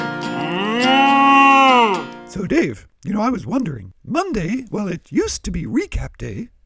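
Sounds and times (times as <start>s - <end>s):
cow mooing: 0.3s - 2.2s
speech: 2.3s - 6.6s.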